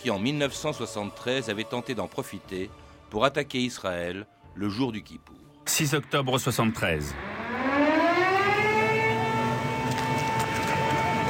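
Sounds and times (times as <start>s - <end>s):
speech: 0.0s - 7.4s
civil defense air raid sirens wailing: 6.5s - 11.2s.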